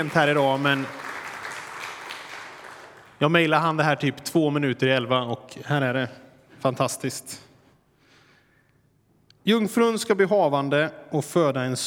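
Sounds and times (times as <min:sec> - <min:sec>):
speech: 0:00.0 - 0:01.0, 0:03.2 - 0:07.5, 0:09.5 - 0:11.8
room full of people applauding: 0:00.0 - 0:03.2.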